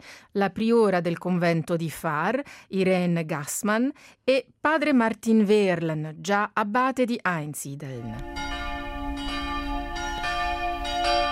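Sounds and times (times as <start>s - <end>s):
speech: 0.0s - 8.5s
monastery church bell ringing for evening prayer: 8.1s - 11.3s.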